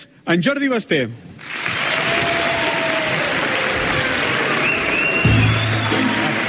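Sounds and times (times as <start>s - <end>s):
speech: 0.2s - 1.3s
audience applause: 1.4s - 6.4s
faint cheers: 1.7s - 6.4s
faint whistles: 4.6s - 5.8s.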